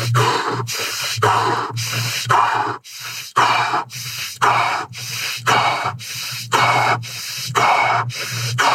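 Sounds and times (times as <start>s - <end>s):
rapid forceful breaths from a breathing exercise: 0.0s - 8.7s.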